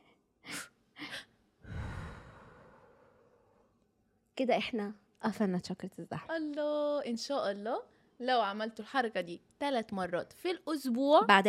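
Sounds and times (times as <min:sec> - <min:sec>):
sharp inhalations in a breathing exercise: 0:00.5 - 0:03.7
long forceful exhale in a breathing exercise: 0:01.6 - 0:03.6
speech: 0:04.4 - 0:11.4.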